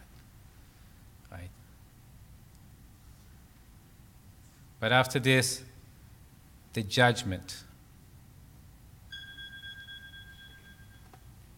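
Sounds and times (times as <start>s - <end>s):
speech: 4.8s - 5.8s, 6.8s - 7.7s
fire alarm high electronic tone: 9.1s - 11.2s.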